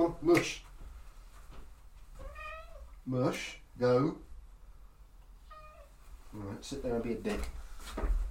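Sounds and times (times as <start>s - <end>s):
speech: 0.1s - 0.7s, 3.1s - 4.3s, 6.3s - 8.2s
cat meowing: 2.2s - 3.0s, 5.4s - 6.0s.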